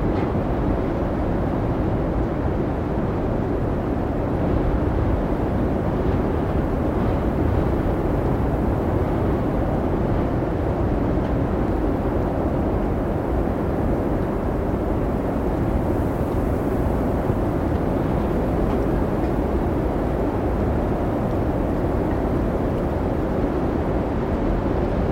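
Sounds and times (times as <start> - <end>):
howling wind from an Icelandic blizzard: 0.0 - 25.1.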